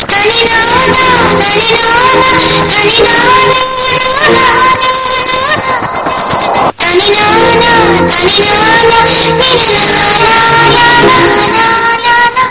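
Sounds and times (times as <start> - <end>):
horror hum ringtone: 0.5 - 12.4.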